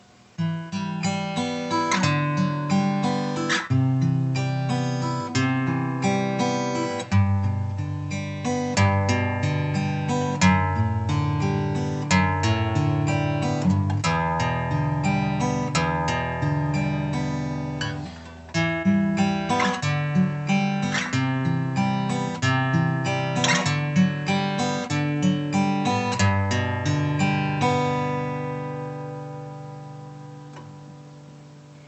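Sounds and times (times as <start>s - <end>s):
OM fingerstyle playing: 0.4s - 31.1s.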